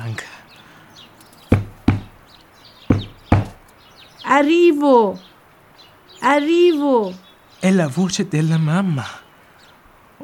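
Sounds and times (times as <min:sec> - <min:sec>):
firm knocking on a door: 0:01.5 - 0:02.2, 0:02.9 - 0:03.6
speech: 0:04.3 - 0:05.3, 0:06.2 - 0:09.2.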